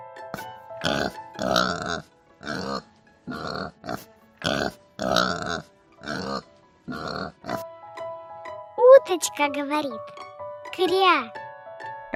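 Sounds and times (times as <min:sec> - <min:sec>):
pig grunting: 0:00.4 - 0:07.7
speech: 0:00.8 - 0:02.6, 0:09.1 - 0:10.2, 0:10.8 - 0:11.4.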